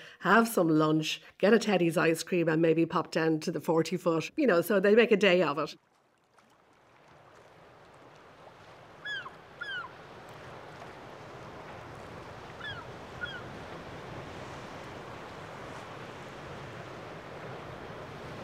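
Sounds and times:
rising wind on the coast: 0:00.0 - 0:18.4
speech: 0:00.2 - 0:05.9
choppy sea waves on the coast: 0:05.3 - 0:18.4
bird calls: 0:09.0 - 0:10.0, 0:12.6 - 0:13.5.

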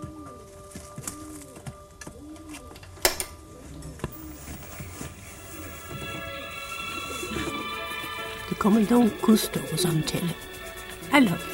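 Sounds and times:
bird cooing while being bandaged: 0:00.0 - 0:04.6
speech: 0:08.6 - 0:10.4, 0:11.1 - 0:11.5.

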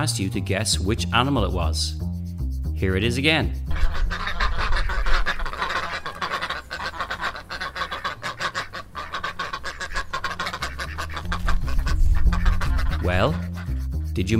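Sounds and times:
speech: 0:00.0 - 0:02.1, 0:02.8 - 0:04.4, 0:13.2 - 0:13.4, 0:14.2 - 0:14.3
female Indian runner ducks quacking at a zoo in Dublin: 0:03.7 - 0:14.3
female Indian runner ducks giving harsh overlapping honking calls: 0:03.8 - 0:11.4.

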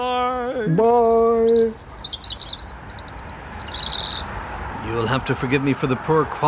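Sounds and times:
speech: 0:00.0 - 0:01.9, 0:04.9 - 0:06.4
birds singing outdoors on a housing estate recorded on a mobile phone: 0:01.1 - 0:05.8.

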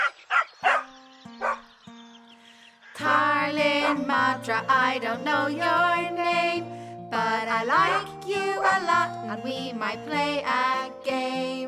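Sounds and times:
dog barking: 0:00.0 - 0:01.6, 0:03.8 - 0:04.1, 0:07.9 - 0:08.9
speech: 0:03.0 - 0:06.8, 0:07.5 - 0:11.6.

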